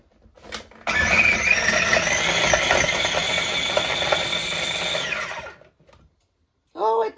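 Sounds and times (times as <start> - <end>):
kitchen appliance motor pulsing to chop oranges: 0.8 - 5.7.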